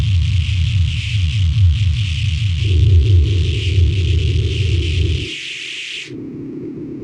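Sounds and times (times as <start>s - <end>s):
low frequency noise atmosphere: 0.2s - 6.9s
glitched tones: 2.5s - 6.1s.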